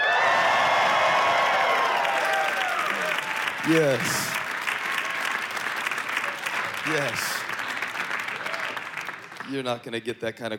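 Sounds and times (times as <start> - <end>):
whoops: 0.0 - 4.2
large church audience yelling and cheering: 0.0 - 9.1
clapping: 1.0 - 9.6
speech: 3.6 - 4.3, 6.8 - 7.4, 9.5 - 10.5.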